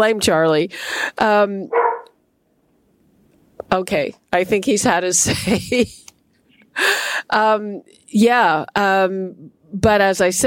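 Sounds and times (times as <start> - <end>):
speech: 0.0 - 1.8, 3.7 - 6.0, 6.8 - 10.4
dog barking: 1.7 - 2.1.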